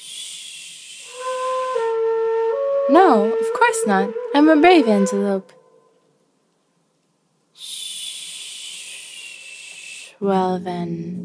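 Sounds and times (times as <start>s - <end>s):
voice imitating a snake's hiss: 0.0s - 1.8s, 7.6s - 10.2s
speech: 2.9s - 5.6s, 10.2s - 11.2s.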